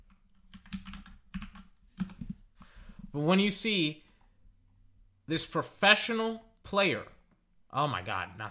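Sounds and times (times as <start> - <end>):
computer keyboard typing: 0.0 - 2.4
speech: 3.1 - 4.0, 5.3 - 8.4.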